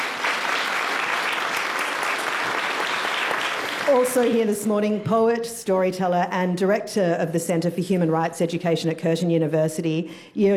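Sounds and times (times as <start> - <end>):
crowd applauding: 0.0 - 4.4
speech: 3.9 - 10.5.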